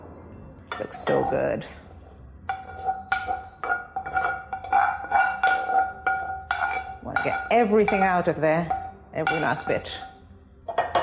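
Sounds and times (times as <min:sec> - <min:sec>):
speech: 0:00.8 - 0:01.8, 0:07.2 - 0:10.1
spoon scraping and clinking against a bowl while stirring onion and raisin mix into couscous: 0:02.4 - 0:11.0.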